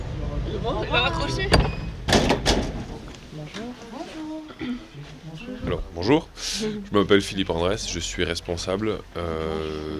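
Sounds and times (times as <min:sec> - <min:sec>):
speech: 0:00.6 - 0:01.8, 0:03.4 - 0:09.9
door unlatched and pushed open for visitors: 0:01.5 - 0:03.0.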